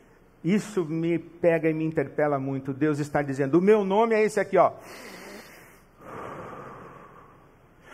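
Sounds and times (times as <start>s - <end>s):
speech: 0.4s - 5.2s
slow deliberate breath in and out: 4.8s - 7.9s.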